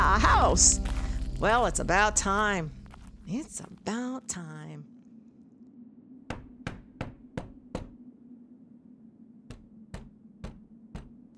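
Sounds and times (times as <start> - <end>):
low hum: 0.0 - 11.3
speech: 0.5 - 4.9
knocking on a wooden house door: 6.3 - 8.0, 9.5 - 11.2.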